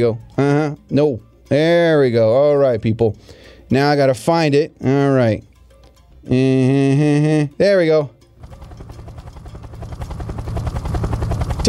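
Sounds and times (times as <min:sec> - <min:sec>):
speech: 0:00.0 - 0:05.5, 0:06.2 - 0:08.2
helicopter rotor thumping: 0:08.4 - 0:11.6.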